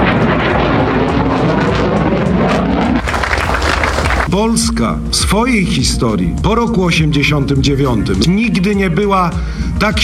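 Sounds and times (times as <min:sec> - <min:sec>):
military jet aircraft flying over: 0:00.0 - 0:04.3
speech: 0:04.4 - 0:10.0.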